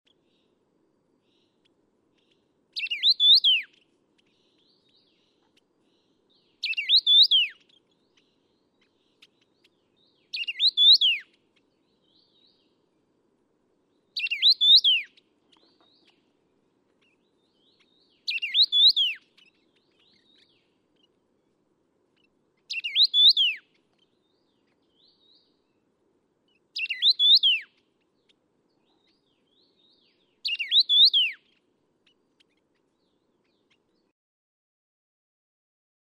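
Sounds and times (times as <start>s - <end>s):
Taiwan yuhina calling: 2.2s - 9.6s, 10.3s - 11.7s, 14.2s - 16.4s, 17.0s - 21.2s, 22.2s - 24.9s, 26.8s - 28.1s, 30.4s - 31.6s.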